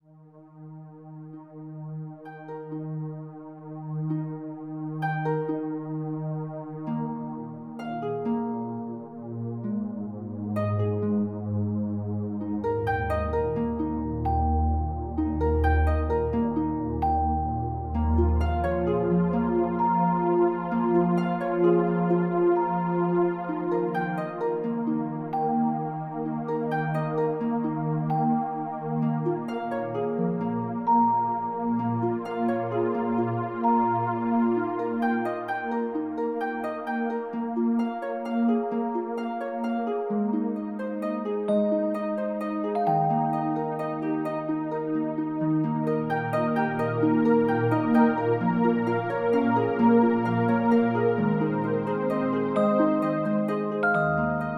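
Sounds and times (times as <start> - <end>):
harp sound from LG Wing 5G phone: 0.0 - 54.5.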